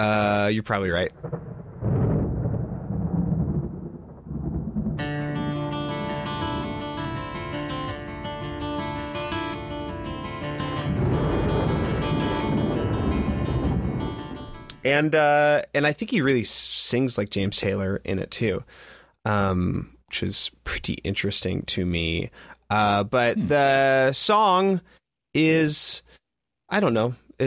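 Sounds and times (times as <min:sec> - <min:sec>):
speech: 0:00.0 - 0:01.4, 0:14.8 - 0:27.2
thunder sound effect rumbling: 0:01.0 - 0:15.2
guitar: 0:05.0 - 0:15.6, 0:22.7 - 0:24.6
sustained musical tones: 0:05.1 - 0:14.8.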